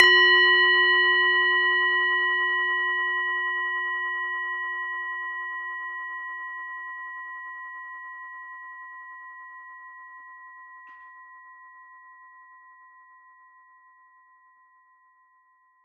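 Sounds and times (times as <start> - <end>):
large Tibetan singing bowl struck: 0.0 - 13.8.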